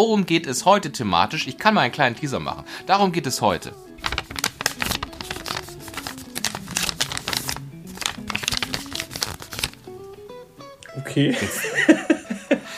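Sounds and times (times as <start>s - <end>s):
speech: 0.0s - 4.2s, 11.2s - 12.6s
sheet of paper being folded: 4.0s - 9.8s
laughter: 11.3s - 12.7s.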